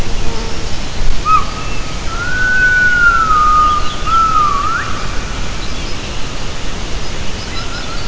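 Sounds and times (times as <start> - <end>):
low rushing water-like roar: 0.0 - 8.0
gibbon call: 1.2 - 5.0.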